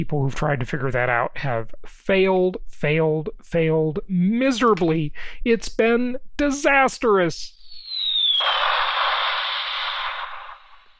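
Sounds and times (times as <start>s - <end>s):
speech: 0.0s - 7.6s
falling bomb whistle sound effect: 7.6s - 10.9s
bomb explosion sound effect: 8.0s - 10.9s.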